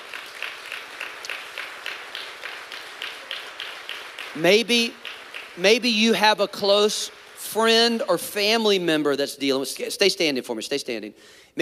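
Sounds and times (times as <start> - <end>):
crowd clapping in unison: 0.0 - 8.8
speech: 4.4 - 5.0, 5.6 - 11.6.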